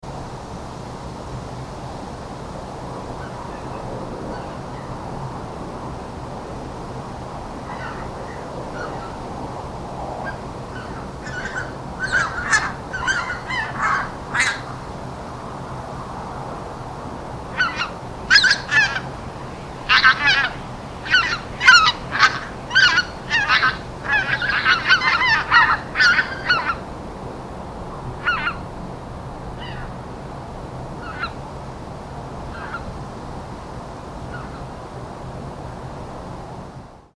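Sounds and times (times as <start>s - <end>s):
Greater White-fronted Goose Anser albifrons: 7.6s - 9.3s, 10.2s - 14.9s, 17.6s - 19.1s, 19.9s - 26.9s, 28.2s - 28.6s, 32.5s - 32.9s.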